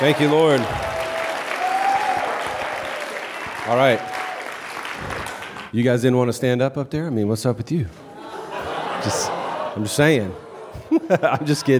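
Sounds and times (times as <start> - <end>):
speech: 0.0 - 0.8, 3.7 - 4.1, 5.7 - 8.0, 9.0 - 10.4, 11.1 - 11.7
crowd applauding: 0.0 - 5.8
laughter: 8.0 - 11.7.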